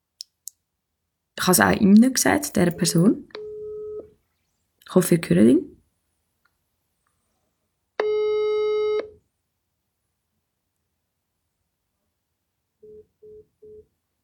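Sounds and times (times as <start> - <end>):
speech: 1.5 - 3.4, 4.9 - 5.7
long buzzy telephone tone of a declined phone call: 3.4 - 4.1, 8.0 - 9.1, 12.8 - 13.9.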